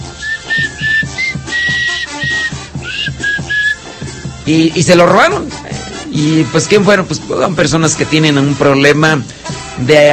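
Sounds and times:
person whistling a melody mimicking a parrot's tune: 0.0s - 3.9s
steady rhythmic backing: 0.0s - 10.1s
speech: 4.5s - 5.6s, 6.2s - 10.1s.

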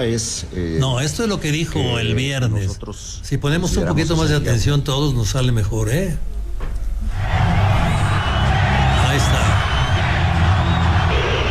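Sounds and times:
speech: 0.0s - 6.7s
crowd booing: 7.1s - 11.4s.

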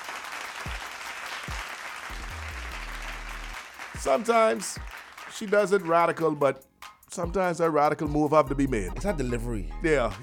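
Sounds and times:
crowd clapping: 0.0s - 6.3s
low thumps: 2.1s - 3.6s
speech: 4.0s - 10.2s.

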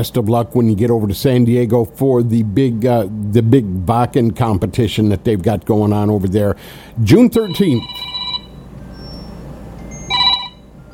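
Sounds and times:
speech: 0.0s - 8.1s
low hum: 0.0s - 10.9s
telephone ringing with an electronic warbling tone: 7.4s - 8.7s, 9.9s - 10.9s.

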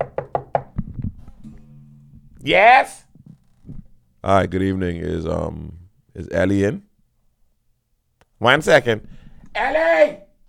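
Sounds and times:
crisp raps on a door: 0.0s - 1.0s
low steady hum: 0.8s - 6.2s
speech: 2.4s - 3.0s, 4.2s - 6.9s, 8.4s - 10.2s.

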